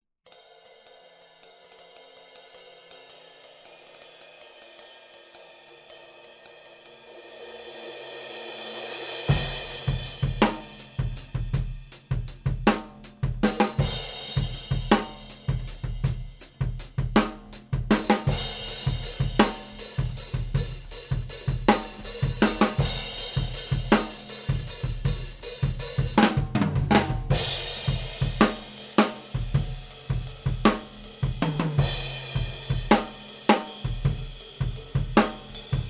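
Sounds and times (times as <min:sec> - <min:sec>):
drum kit recorded with overhead microphones: 0:00.3 - 0:35.8.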